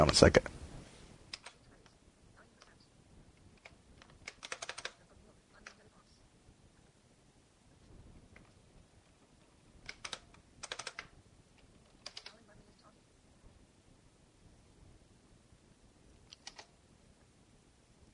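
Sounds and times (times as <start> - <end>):
speech: 0.0 - 0.6
soft hush: 0.0 - 18.1
quiet typing on a computer keyboard while adjusting screen magnification: 1.3 - 1.7, 3.6 - 5.0, 9.8 - 11.2, 11.9 - 12.5, 16.3 - 16.7.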